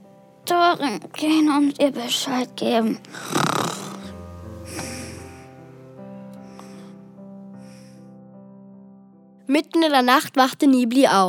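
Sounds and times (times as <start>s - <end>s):
speech: 0.5s - 3.6s, 9.5s - 11.2s
dragon snoring loudly while asleep: 3.2s - 5.5s.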